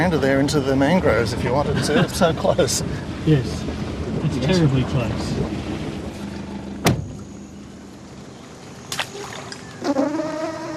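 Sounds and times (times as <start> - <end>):
speech: 0.0 - 5.6
low rumble: 0.0 - 9.7
mosquitoes buzzing: 9.1 - 10.7.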